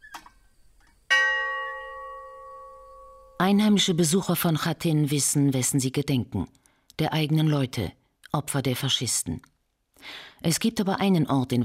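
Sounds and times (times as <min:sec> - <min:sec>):
bell atop a chimney at a massacre memorial in Khatyn, Belarus, ringing: 0:01.1 - 0:03.4
speech: 0:03.4 - 0:11.6.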